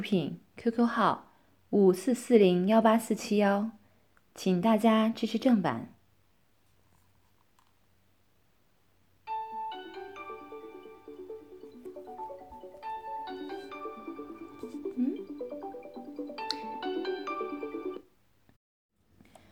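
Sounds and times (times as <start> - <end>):
speech: 0.0 - 3.8, 4.4 - 5.9
melodic phone ringtone of chiming tones for an incoming call: 9.3 - 18.0.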